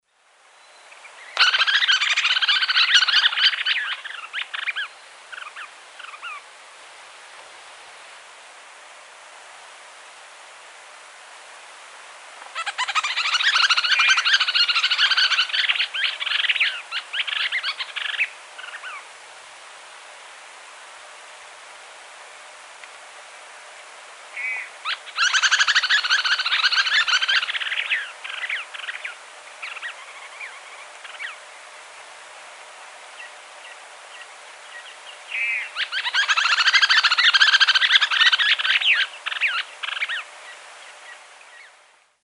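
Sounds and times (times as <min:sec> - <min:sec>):
Suiriri suiriri affinis calling at Laguna Blanca: 0:00.0 - 0:06.6, 0:12.4 - 0:19.2, 0:24.3 - 0:32.2, 0:33.0 - 0:41.8.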